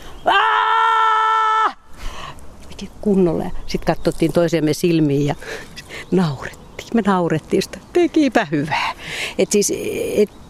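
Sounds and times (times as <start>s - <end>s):
woman screaming: 0.2s - 1.8s
speech: 2.8s - 10.4s.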